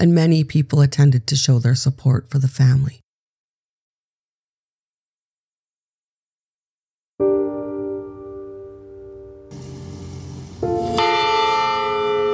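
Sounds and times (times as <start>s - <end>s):
speech: 0.0s - 3.0s
church bells ringing during a funeral on a cold gray day: 9.5s - 12.3s.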